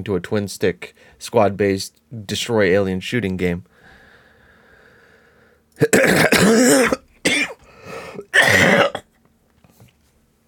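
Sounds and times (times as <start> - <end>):
speech: 0.0 - 3.7, 5.8 - 7.0
person sneezing: 5.9 - 9.0.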